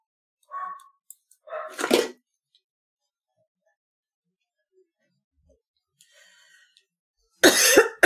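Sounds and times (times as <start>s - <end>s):
dogs barking: 0.5s - 2.0s.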